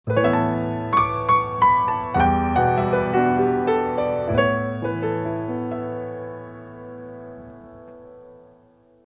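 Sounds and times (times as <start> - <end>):
piano stings: 0.1 - 9.0.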